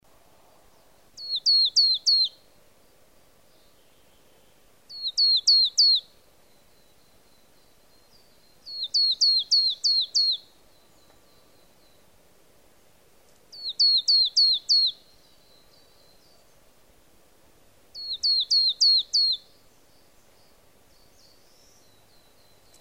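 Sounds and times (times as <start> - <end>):
marsh tit repeating high falling notes: 1.2 - 2.3, 4.9 - 6.1, 8.6 - 11.8, 13.5 - 16.5, 18.0 - 20.2.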